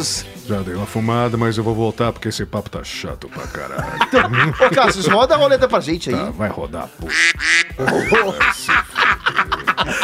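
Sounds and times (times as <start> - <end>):
speech: 0.0 - 10.0
laughter: 3.4 - 5.6, 7.1 - 10.0
duck quacking in raspy bursts: 7.0 - 7.8.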